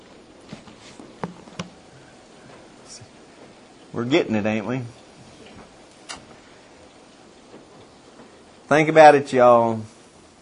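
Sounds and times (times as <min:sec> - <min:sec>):
heavy rainfall: 0:00.0 - 0:10.3
speech: 0:03.9 - 0:05.0, 0:08.7 - 0:09.9.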